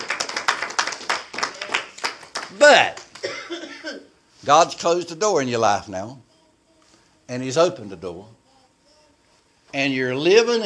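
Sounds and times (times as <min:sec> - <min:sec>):
church congregation clapping in a steady rhythm: 0:00.0 - 0:03.3
speech: 0:02.5 - 0:06.3, 0:07.3 - 0:08.4, 0:09.7 - 0:10.6.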